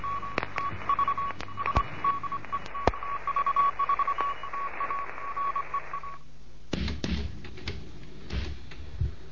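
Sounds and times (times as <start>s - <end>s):
Morse code tone for a beginners' lesson transmitted from Bremen: 0.0s - 6.2s
hissy radio static: 0.0s - 6.2s
radio crackles and clicks: 0.0s - 8.8s.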